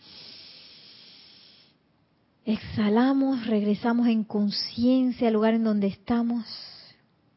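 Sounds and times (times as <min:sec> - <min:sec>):
person taking a long deep breath in: 0:00.0 - 0:01.8
speech: 0:02.5 - 0:06.8.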